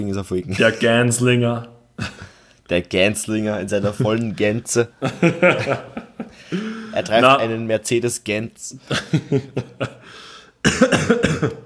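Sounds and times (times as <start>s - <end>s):
speech: 0.0s - 11.6s
laughter: 3.8s - 6.9s, 8.8s - 10.1s
faint breath: 6.3s - 7.0s, 10.0s - 10.6s
person coughing in harsh bursts: 10.6s - 11.6s.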